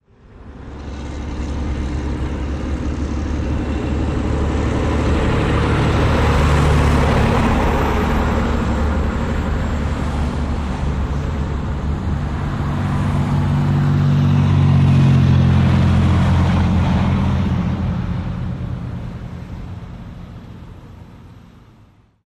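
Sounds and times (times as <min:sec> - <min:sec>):
diesel truck driving by: 0:00.0 - 0:22.2.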